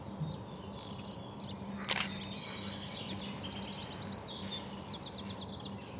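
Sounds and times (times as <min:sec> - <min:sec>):
Eurasian wren singing: 0:00.0 - 0:05.9
steady outdoor hum: 0:00.0 - 0:05.9
sharp mechanical click: 0:01.8 - 0:02.2.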